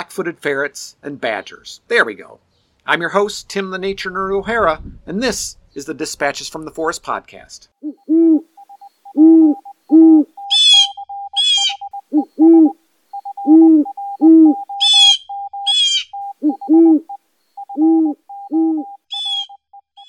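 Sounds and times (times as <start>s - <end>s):
speech: 0.2s - 8.4s
burrowing owl giving soft low two-note hoots: 7.8s - 20.0s
burrowing owl high raspy chattering calls: 10.4s - 12.3s, 14.7s - 16.2s, 19.1s - 20.0s.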